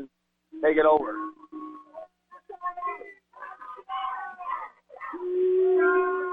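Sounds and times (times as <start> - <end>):
speech: 0.0 - 1.4
crowd booing: 3.4 - 6.3.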